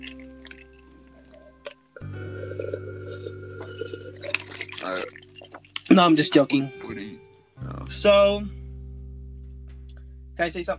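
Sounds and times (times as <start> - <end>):
steady low hum: 0.0 - 5.8, 7.6 - 10.7
someone sipping from a glass: 0.0 - 5.9
small drips: 0.0 - 6.6
slurp: 1.2 - 5.9
speech: 6.0 - 6.9, 8.0 - 8.6, 10.4 - 10.7.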